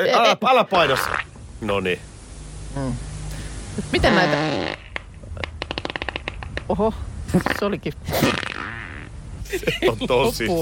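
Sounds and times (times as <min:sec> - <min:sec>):
speech: 0:00.0 - 0:02.1, 0:02.8 - 0:03.1, 0:03.8 - 0:04.8, 0:06.7 - 0:08.5, 0:09.5 - 0:10.6
laughter: 0:03.8 - 0:04.4, 0:09.4 - 0:10.6
farts from a recorded compilation: 0:04.0 - 0:06.6, 0:07.3 - 0:09.1.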